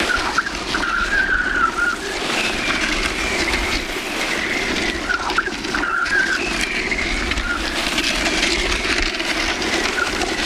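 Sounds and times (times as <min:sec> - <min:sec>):
skid on earth: 0:00.0 - 0:10.4.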